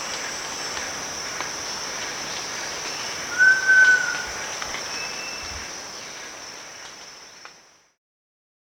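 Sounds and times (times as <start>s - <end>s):
steady high insect drone: 0.0s - 8.0s
giant pitta long pure whistle at Danum: 3.3s - 4.4s.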